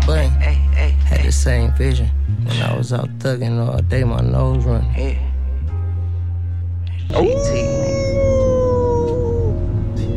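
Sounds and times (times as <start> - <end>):
low steady hum: 0.0 - 10.1
speech: 1.3 - 5.3, 7.1 - 7.8
voice imitating a wolf howl: 7.1 - 9.6.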